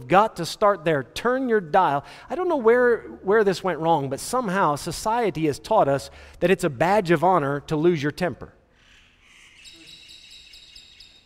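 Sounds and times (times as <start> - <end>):
speech: 0.0 - 8.6
birds chirping outdoors: 9.2 - 11.2.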